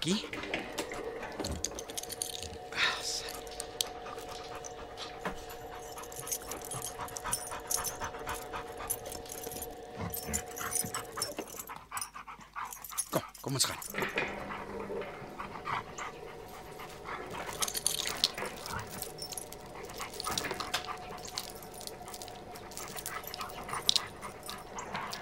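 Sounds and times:
speech: 0:00.0 - 0:00.4
dog panting as its leash is put on: 0:00.0 - 0:25.2.

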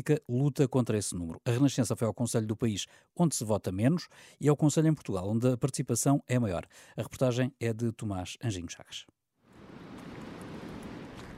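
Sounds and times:
speech: 0:00.0 - 0:09.2
Atlantic Ocean waves on north coast of São Miguel island, Azores, Portugal: 0:09.5 - 0:11.3.

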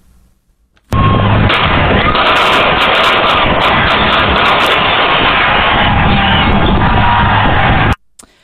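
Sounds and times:
gunfire at a victory celebration: 0:00.9 - 0:07.9
large outdoor crowd shouting and cheering at a victory celebration: 0:00.9 - 0:08.0.

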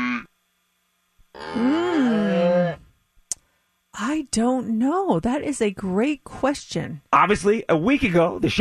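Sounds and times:
speech: 0:01.4 - 0:02.1, 0:04.2 - 0:08.5
cow mooing: 0:01.4 - 0:02.8.

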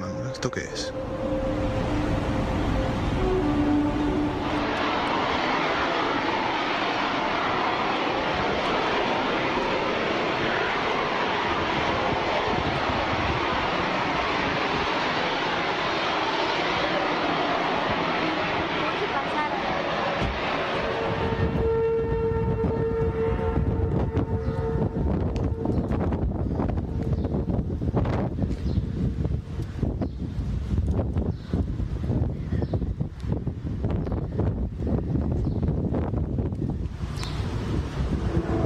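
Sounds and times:
faint horn-like tones: 0:00.0 - 0:04.8, 0:21.1 - 0:25.8, 0:38.2 - 0:38.6
loud sustained roaring drone with trumpet-like sounds from the sky: 0:00.0 - 0:38.6
speech: 0:00.4 - 0:01.0.

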